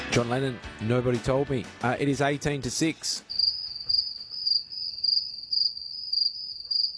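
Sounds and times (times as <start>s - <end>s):
speech: 0.2s - 3.3s
crickets chirping: 3.3s - 6.9s.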